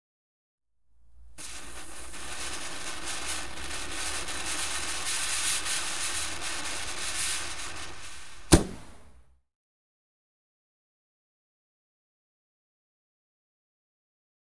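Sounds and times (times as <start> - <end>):
mine of serpents fireworks fizzing: 1.0 - 9.2.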